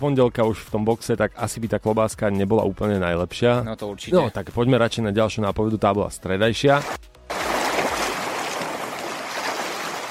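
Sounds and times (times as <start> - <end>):
speech: 0.0 - 7.1
steady rushing water: 6.8 - 10.0.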